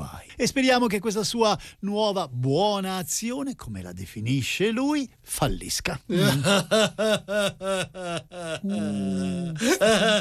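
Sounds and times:
speech: 0:00.4 - 0:10.2
person sobbing and wailing desperately: 0:06.1 - 0:10.2.

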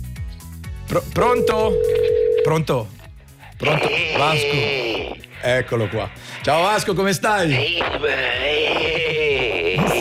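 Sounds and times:
speech: 0:00.9 - 0:03.0, 0:03.6 - 0:09.1
telephone dial tone: 0:01.5 - 0:02.5.

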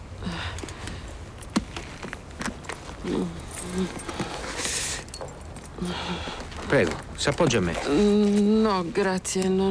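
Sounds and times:
faint outdoor noise: 0:00.0 - 0:09.6
bunch of car keys jangling as they are handed over: 0:02.6 - 0:06.0
speech: 0:03.0 - 0:04.3, 0:05.8 - 0:09.6.

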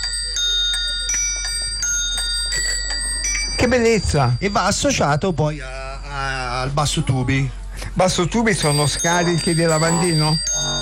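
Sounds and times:
bicycle bells mounted on a handlebar musical instrument ringing: 0:00.0 - 0:05.6, 0:08.4 - 0:10.8
low steady hum: 0:00.0 - 0:10.8
speech: 0:03.6 - 0:10.7.

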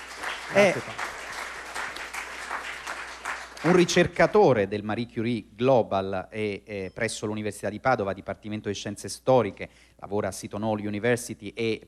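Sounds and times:
audience applause welcoming a speaker onto a stage: 0:00.0 - 0:04.1
speech: 0:00.5 - 0:01.0, 0:03.6 - 0:11.8.

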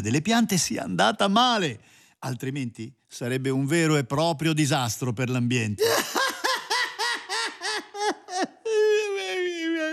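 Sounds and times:
speech: 0:00.0 - 0:06.2
voice sobbing and wailing: 0:05.8 - 0:09.9.

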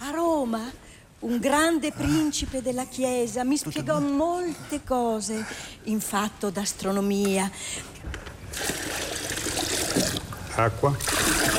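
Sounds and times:
speech: 0:00.5 - 0:08.9, 0:10.6 - 0:11.4
water trickling and pouring: 0:08.5 - 0:11.5.

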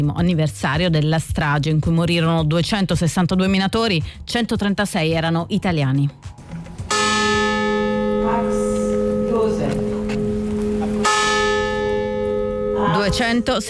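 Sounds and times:
speech: 0:00.0 - 0:06.4, 0:09.4 - 0:09.8, 0:12.9 - 0:13.6
deep church bell tolling at memorial: 0:06.9 - 0:13.6.

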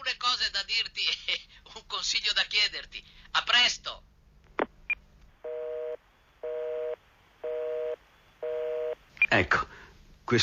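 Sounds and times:
speech: 0:00.1 - 0:04.1, 0:09.3 - 0:10.4
telephone busy tone after call hangs up: 0:05.4 - 0:09.0.

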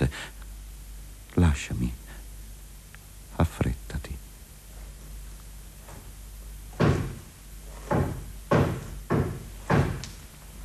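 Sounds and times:
speech: 0:01.4 - 0:02.0
heavy resonant knocking on a wooden door: 0:06.7 - 0:10.0.

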